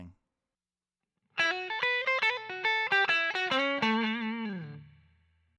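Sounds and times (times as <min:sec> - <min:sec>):
clean electric guitar: 0:01.4 - 0:05.3.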